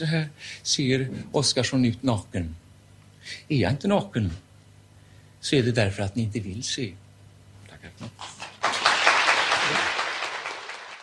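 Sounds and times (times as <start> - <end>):
speech: 0.0 - 2.6, 3.3 - 4.4, 5.4 - 7.0, 7.9 - 8.4
studio audience clapping: 8.1 - 11.0
studio audience cheering with excited voices: 8.5 - 11.0.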